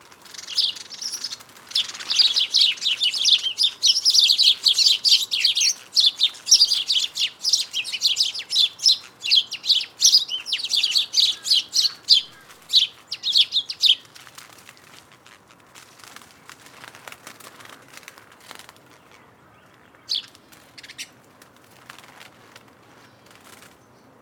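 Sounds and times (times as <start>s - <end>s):
House sparrows Passer domesticus chirping in a dense chorus: 0.0s - 18.0s, 18.6s - 21.3s.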